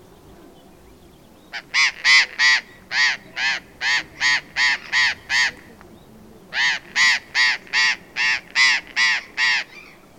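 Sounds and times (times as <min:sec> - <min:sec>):
burrowing parrot Cyanoliseus patagonus squawks: 0:01.6 - 0:05.5, 0:06.5 - 0:09.9.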